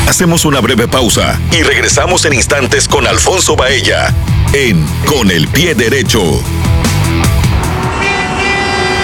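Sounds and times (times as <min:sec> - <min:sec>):
speech: 0:00.2 - 0:07.3
dense heavy traffic roar: 0:07.1 - 0:09.0
car horns honking: 0:07.6 - 0:09.0.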